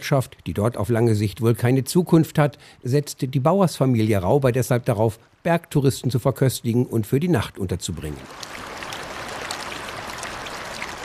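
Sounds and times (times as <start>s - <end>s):
speech: 0.0s - 8.7s
young glacier-fed river rushing through a wide gravel bed in the upper Gastern valley: 8.2s - 11.0s.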